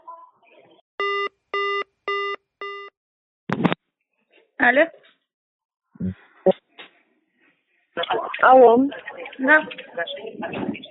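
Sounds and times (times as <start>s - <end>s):
telephone busy signal beeps after the other party hangs up: 1.0s - 2.9s
noisy click: 3.5s - 3.8s
speech: 4.6s - 5.1s, 6.0s - 6.6s, 8.4s - 10.8s.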